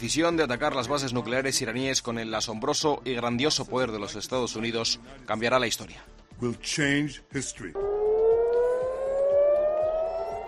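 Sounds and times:
speech: 0.0s - 7.9s
air raid sirens wailing across Jerusalem and Tel Aviv: 7.8s - 10.4s.

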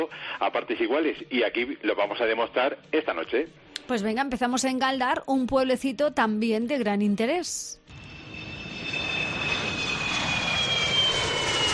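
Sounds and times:
speech: 0.0s - 7.8s
airplane engine roar: 7.9s - 11.7s.

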